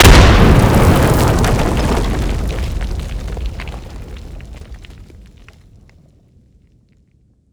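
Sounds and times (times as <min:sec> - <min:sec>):
cache explosion: 0:00.0 - 0:05.8.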